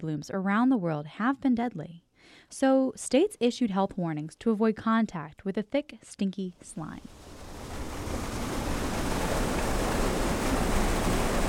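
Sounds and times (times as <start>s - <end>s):
speech: 0.0s - 7.3s
water rushing at a drinking water treatment plant: 7.1s - 11.4s.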